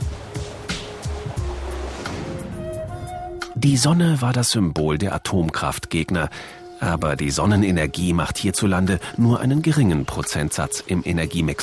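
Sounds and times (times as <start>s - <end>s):
ocean surf breaking on a shore: 0.0s - 3.4s
speech: 3.6s - 11.6s.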